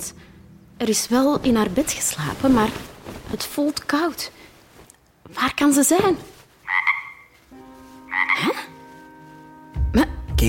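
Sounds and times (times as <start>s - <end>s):
speech: 0.8s - 4.5s, 5.3s - 6.8s, 10.0s - 10.4s
large green frog croaking under a bed: 6.6s - 7.4s, 8.1s - 8.8s.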